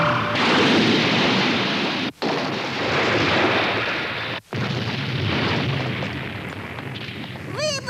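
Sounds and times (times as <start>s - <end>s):
flying house crash landing with heavy rumbling and booming: 0.2s - 7.7s.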